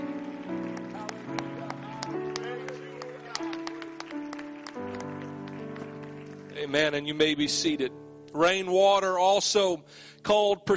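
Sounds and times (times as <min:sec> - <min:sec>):
audience at a church service clapping hands in praise: 0:00.0 - 0:07.4
sustained organ or keyboard chords: 0:00.0 - 0:10.2
speech: 0:06.6 - 0:10.7.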